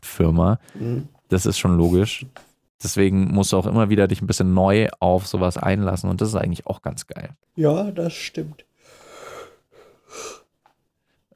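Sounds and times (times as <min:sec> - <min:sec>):
speech: 0:00.2 - 0:09.0, 0:10.1 - 0:10.4
person yawning: 0:00.7 - 0:01.1
airy exhale: 0:08.8 - 0:10.5.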